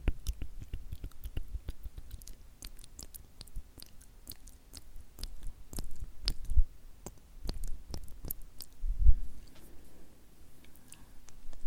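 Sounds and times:
dry rhythmic tongue clicks and flutters: 0.0 - 8.8.

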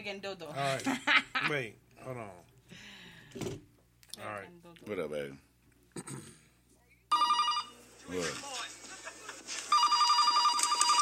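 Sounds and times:
speech: 0.0 - 6.4, 8.1 - 8.6
telephone ringing with a bright electronic tone: 7.1 - 8.3, 9.7 - 11.0.

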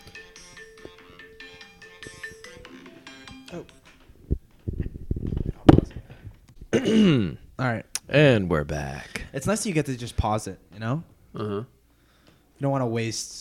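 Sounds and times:
phone ringtone with bright repeating electronic melody: 0.0 - 4.0
speech: 3.5 - 3.8, 6.9 - 11.8, 12.6 - 13.4
loud thumps: 4.3 - 6.8.

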